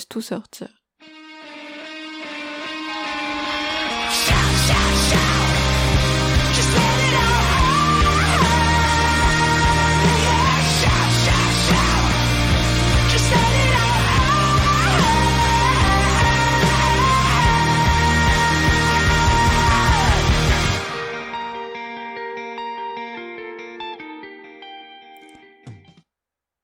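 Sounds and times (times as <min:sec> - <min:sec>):
speech: 0:00.0 - 0:00.8
loud driving song with heavy bass and layered instruments: 0:03.1 - 0:21.4.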